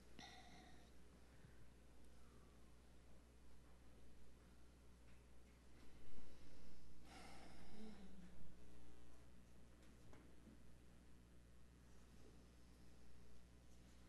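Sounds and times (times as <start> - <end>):
faint low hum: 0.0 - 14.0
soft slow breathing: 0.2 - 2.6, 5.8 - 9.1.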